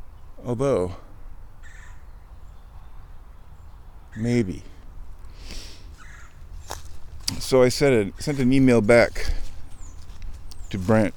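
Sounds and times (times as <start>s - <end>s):
speech: 0.4s - 1.1s, 4.2s - 4.8s, 7.4s - 9.4s, 10.7s - 11.1s
harsh bird call overhead: 1.6s - 2.7s, 5.4s - 6.4s.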